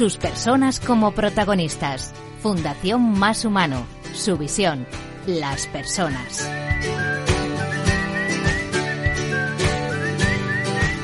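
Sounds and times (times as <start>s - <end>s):
speech: 0.0s - 7.1s
upbeat musical backing with a steady rhythmic beat: 5.0s - 11.0s
person whistling a bright sliding melody: 5.8s - 11.0s.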